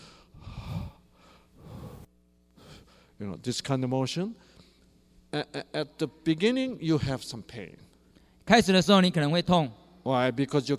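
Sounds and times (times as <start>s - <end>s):
deep forceful nasal breaths during a breathing exercise: 0.0s - 3.2s
speech: 3.2s - 4.6s, 5.3s - 7.9s, 8.5s - 10.7s.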